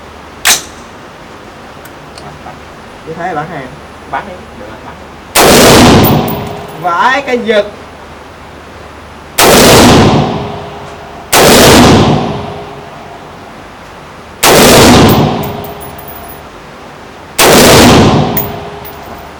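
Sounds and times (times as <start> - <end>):
speech: 2.5 - 7.8
gunshots at an indoor shooting range: 5.4 - 6.8, 9.4 - 10.5, 11.3 - 12.6, 14.4 - 16.3, 17.4 - 19.2.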